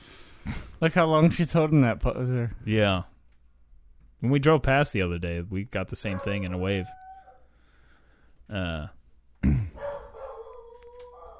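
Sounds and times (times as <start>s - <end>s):
speech: 0.8s - 3.1s, 4.2s - 7.0s, 8.5s - 9.6s
female dog barking: 6.1s - 7.4s, 9.8s - 11.3s.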